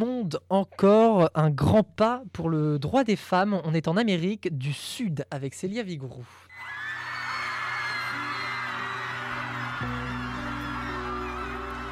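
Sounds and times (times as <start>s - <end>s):
speech: 0.0s - 6.4s
thousands of people in Argentina cheering after vote legalizing abortion: 6.5s - 11.9s.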